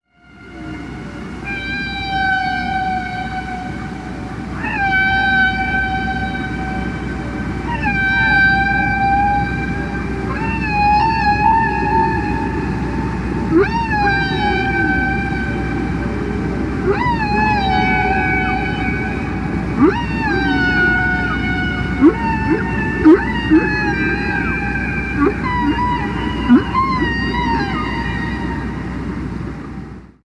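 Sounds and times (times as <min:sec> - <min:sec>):
solo whale: 0:00.0 - 0:30.2.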